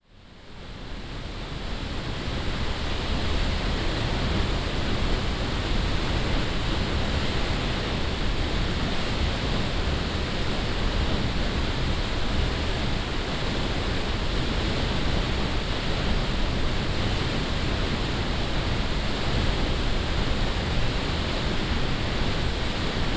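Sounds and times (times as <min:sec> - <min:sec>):
Gluggafoss waterfall recorded close up: 0:00.0 - 0:23.1.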